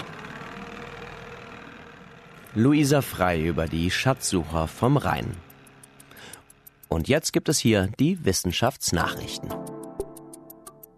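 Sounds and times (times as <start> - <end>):
survey motorboat engine droning on the river Rhine near Bonn: 0.0 - 7.9
speech: 2.6 - 5.5, 6.9 - 9.6.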